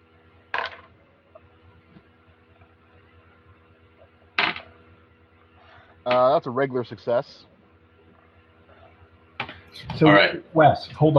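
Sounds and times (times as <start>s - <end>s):
low steady hum: 0.0s - 11.1s
dice rolled for a tabletop game rattling: 0.6s - 0.9s
speech: 6.1s - 7.5s, 10.0s - 11.1s.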